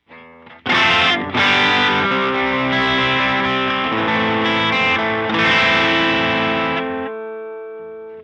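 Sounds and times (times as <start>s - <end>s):
electric guitar with spring effect bypassed: 0.0s - 8.2s.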